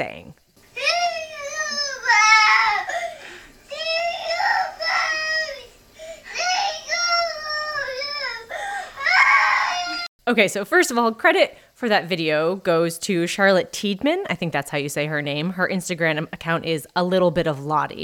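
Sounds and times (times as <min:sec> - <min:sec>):
speech: 0:00.0 - 0:01.0, 0:10.3 - 0:18.0
toddler crying during a tantrum: 0:00.8 - 0:10.1.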